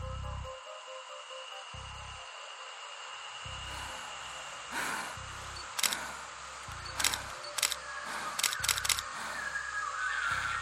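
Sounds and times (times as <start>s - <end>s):
steady low hum: 0.0s - 10.6s
camera shutter clicking at night in pitch darkness: 5.8s - 6.1s, 7.0s - 9.1s.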